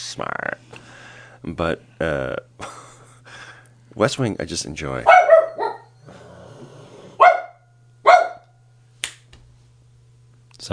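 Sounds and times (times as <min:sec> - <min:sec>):
speech: 0:00.1 - 0:00.8, 0:01.4 - 0:02.8, 0:03.9 - 0:05.4, 0:10.6 - 0:10.7
dog barking: 0:05.0 - 0:06.0, 0:07.2 - 0:08.5.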